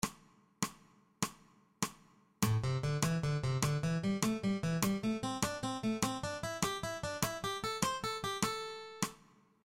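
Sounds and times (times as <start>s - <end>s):
ascending eighth-note triplet motif with wrist muting: 2.5s - 9.0s.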